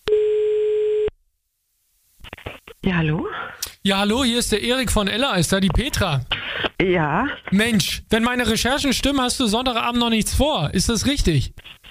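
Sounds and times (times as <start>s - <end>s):
ringing tone of an outgoing telephone call: 0.0s - 1.1s
speech: 2.8s - 11.8s.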